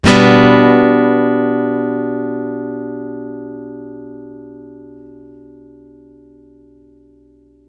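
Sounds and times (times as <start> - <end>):
acoustic guitar one shot in D major: 0.0 - 5.8.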